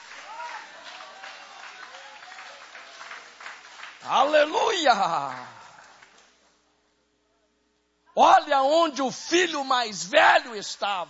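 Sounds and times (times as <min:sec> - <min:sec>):
church audience applauding: 0:00.0 - 0:06.3
speech: 0:04.0 - 0:05.5, 0:08.2 - 0:11.0.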